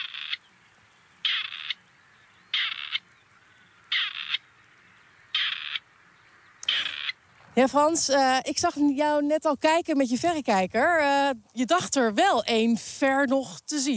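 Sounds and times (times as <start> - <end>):
recorded harsh bird call: 2.4 - 5.9, 6.6 - 7.2
speech: 7.6 - 13.9.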